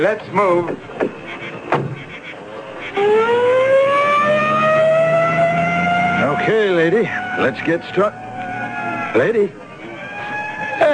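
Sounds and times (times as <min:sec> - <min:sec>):
speech: 0:00.0 - 0:01.8, 0:03.0 - 0:03.5, 0:06.4 - 0:08.2, 0:09.2 - 0:09.6
ambulance and police squad car siren wailing, radio drama effect: 0:00.8 - 0:10.9.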